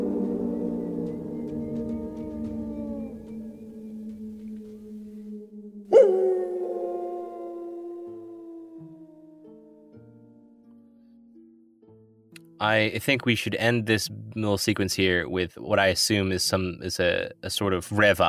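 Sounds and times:
chorus of howls at night: 0.0 - 10.0
speech: 12.6 - 18.2.

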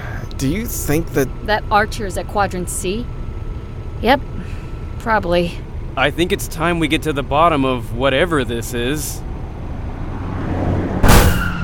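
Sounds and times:
steady engine rumble: 0.0 - 11.6
speech: 0.4 - 3.2, 4.0 - 9.3
loud crunching impact: 11.0 - 11.6.

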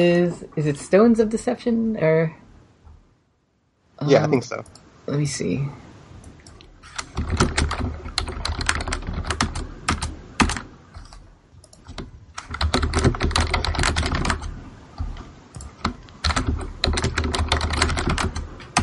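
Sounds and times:
speech: 0.0 - 2.4, 4.0 - 5.8
loud rapid typing on a computer keyboard: 6.5 - 18.8.

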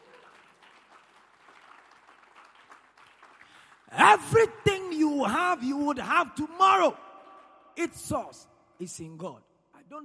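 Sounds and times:
congregation clapping: 0.0 - 5.0
speech: 4.0 - 7.1, 7.8 - 10.0.

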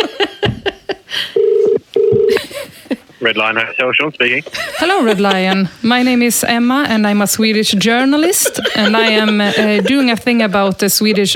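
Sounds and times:
laughter: 0.0 - 1.2, 2.3 - 3.1, 4.2 - 6.3, 8.0 - 11.3
touch-tone dialing beeps through a phone line: 1.4 - 2.3
speech: 3.2 - 11.3.

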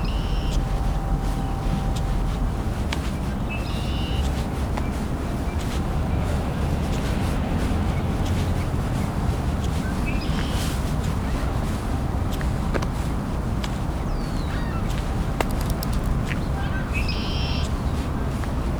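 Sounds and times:
red-winged blackbird calls and trills: 0.0 - 0.7, 3.5 - 4.3, 14.0 - 17.8
ring-billed gull calls: 0.0 - 2.3, 14.0 - 17.8
steady wind: 0.0 - 18.7.

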